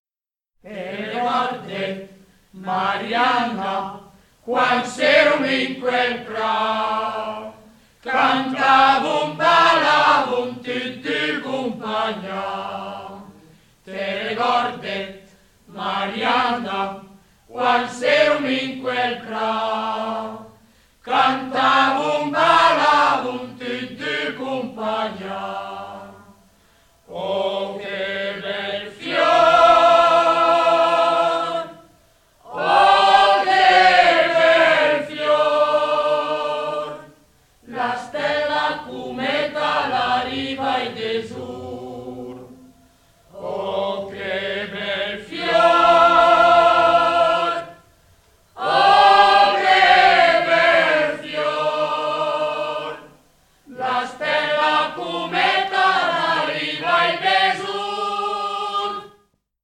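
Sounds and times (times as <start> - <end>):
choir singing: 0.6 - 59.3.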